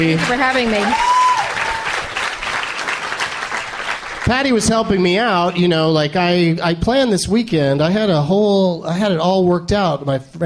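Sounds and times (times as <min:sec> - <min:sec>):
speech: 0:00.0 - 0:01.1, 0:04.3 - 0:10.4
audience applause from a crowd: 0:00.0 - 0:05.9.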